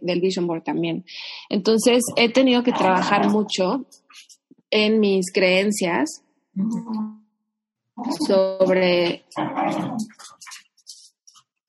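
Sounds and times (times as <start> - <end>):
speech: 0.0 - 7.2, 8.0 - 10.6
dog growling: 2.1 - 3.5, 9.3 - 10.2.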